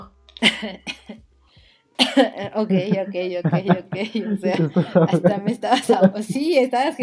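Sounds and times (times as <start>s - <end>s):
speech: 0.0s - 1.2s, 2.0s - 7.0s
harsh choking coughing fit: 0.4s - 1.3s, 2.0s - 6.4s
laughter: 2.2s - 7.0s.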